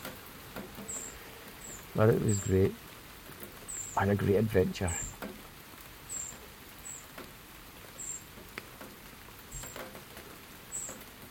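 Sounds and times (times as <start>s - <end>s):
steady patter-like hiss: 0.0s - 11.3s
wrens chirping near a small bird feeder house: 0.6s - 5.3s, 6.0s - 7.2s, 7.9s - 8.4s, 10.6s - 11.2s
speech: 2.0s - 2.9s, 4.0s - 5.0s.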